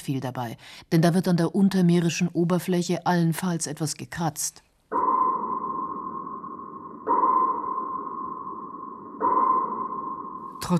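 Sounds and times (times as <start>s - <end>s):
speech: 0.0s - 5.1s
sonar pings from an echo sounder scanning the seafloor: 4.9s - 10.7s.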